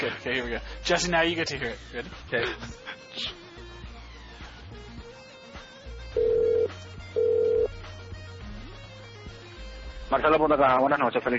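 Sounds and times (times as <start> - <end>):
speech: 0.0 - 3.4, 10.1 - 11.3
telephone call ring tones on the line: 6.2 - 7.8.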